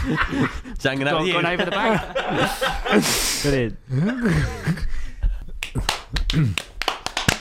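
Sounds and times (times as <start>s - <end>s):
speech: 0.0s - 5.0s, 5.8s - 6.7s
laughter: 0.0s - 6.6s
sharp irregular hand claps: 5.5s - 7.3s.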